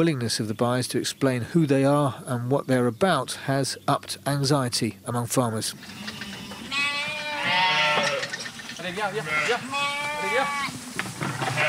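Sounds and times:
speech: 0:00.0 - 0:06.2, 0:08.8 - 0:10.8
busy farmyard murmur: 0:00.0 - 0:11.6
flock of black-faced Suffolk sheep bleating at feeding time: 0:05.9 - 0:10.8, 0:11.4 - 0:11.6.

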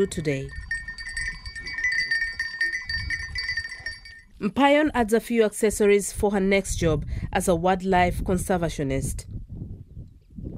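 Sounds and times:
speech: 0:00.0 - 0:00.6, 0:04.4 - 0:09.3
livestock bells clinking in Samburu County, Kenya: 0:00.0 - 0:04.4.

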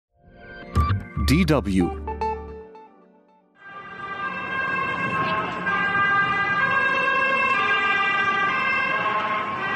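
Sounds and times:
speech: 0:01.3 - 0:02.1
ambulance sirens speeding past in Stockholm: 0:03.6 - 0:09.7
road traffic rumble: 0:03.6 - 0:09.7.

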